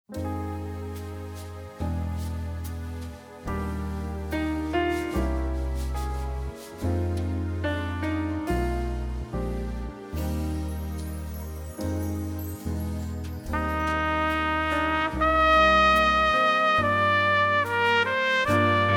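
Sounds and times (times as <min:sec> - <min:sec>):
solo melody: 0:00.1 - 0:18.9.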